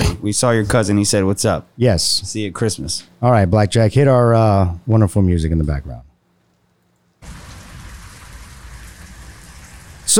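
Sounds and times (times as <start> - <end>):
speech: 0.2 - 6.1
rain stick rain-like patter: 7.2 - 10.1.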